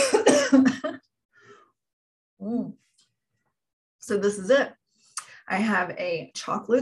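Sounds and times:
rough coughing and throat clearing: 0:00.0 - 0:01.0
speech: 0:04.1 - 0:04.8, 0:05.5 - 0:06.8.

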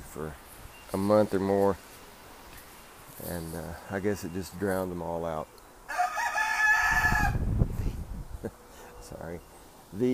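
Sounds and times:
speech: 0:00.2 - 0:01.9, 0:03.2 - 0:06.0, 0:09.1 - 0:10.1
rooster crowing: 0:05.9 - 0:07.5.

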